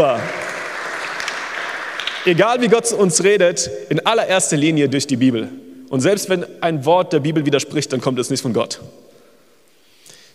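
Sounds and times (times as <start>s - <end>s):
speech: 0.0s - 0.4s, 2.2s - 9.1s
crowd clapping for an audience member's answer: 0.0s - 2.7s.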